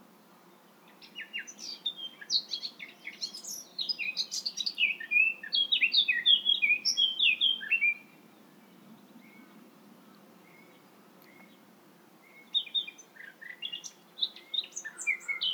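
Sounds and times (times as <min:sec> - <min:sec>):
Eurasian blackcap Sylvia atricapilla singing: 0:01.0 - 0:08.0, 0:12.4 - 0:15.5.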